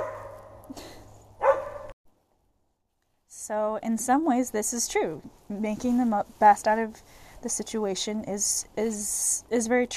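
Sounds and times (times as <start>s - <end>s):
dog barking: 0.0s - 0.6s, 1.4s - 1.9s
speech: 3.5s - 9.9s.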